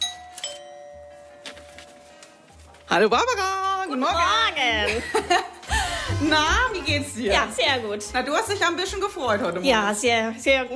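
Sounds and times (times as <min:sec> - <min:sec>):
two-tone doorbell chime at a house: 0:00.0 - 0:01.7
speech: 0:02.9 - 0:05.5, 0:06.2 - 0:10.7.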